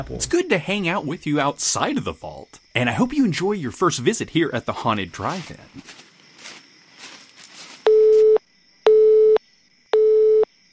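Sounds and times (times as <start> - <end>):
speech: 0.0 - 6.0
car phone ringing with electronic tones: 7.9 - 9.4, 10.0 - 10.5.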